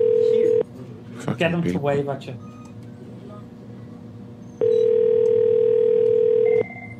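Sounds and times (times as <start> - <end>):
telephone ringback tone over a call line: 0.0 - 0.6, 4.6 - 6.9
speech: 1.3 - 2.5.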